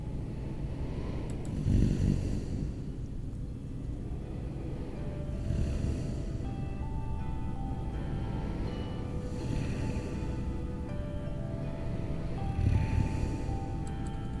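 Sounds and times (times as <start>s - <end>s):
person snoring while asleep: 0.2s - 3.0s, 4.1s - 14.3s.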